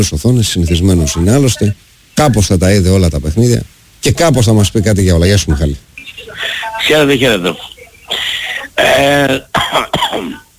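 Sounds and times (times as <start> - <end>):
speech: 0.0 - 10.4
man coughing harshly: 8.1 - 10.4.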